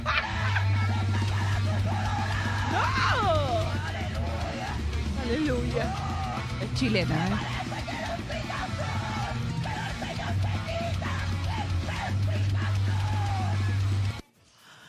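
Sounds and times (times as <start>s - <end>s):
laughter: 0.0s - 12.4s
dense heavy backing music with droning low notes: 0.0s - 14.2s
woman screaming in harsh metal-style growl: 2.1s - 3.9s
speech: 5.3s - 7.6s.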